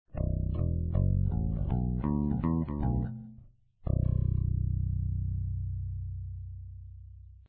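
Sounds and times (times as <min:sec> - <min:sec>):
guitar picking on both pickups: 0:00.2 - 0:05.4.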